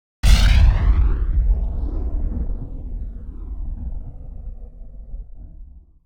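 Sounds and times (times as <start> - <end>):
cannon firing a rocket: 0.2 - 5.9.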